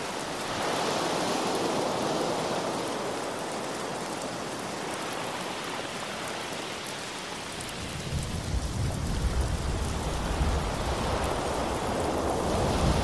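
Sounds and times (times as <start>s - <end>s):
heavy rain pouring: 0.0s - 13.0s
deep rolling thunder: 7.9s - 13.0s.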